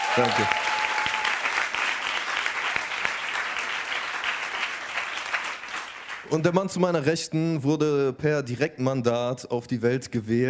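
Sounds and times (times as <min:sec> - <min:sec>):
studio audience applause: 0:00.0 - 0:06.5
speech: 0:00.2 - 0:00.8, 0:06.3 - 0:10.4.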